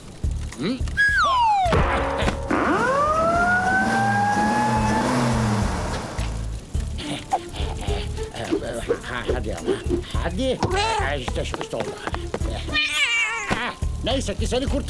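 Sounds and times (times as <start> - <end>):
speech: 0.6 - 2.1, 9.2 - 13.0, 14.0 - 14.8
fire engine siren sweeping in pitch: 1.0 - 5.8
fire engine engine rumbling on its way to a fire: 2.2 - 11.5.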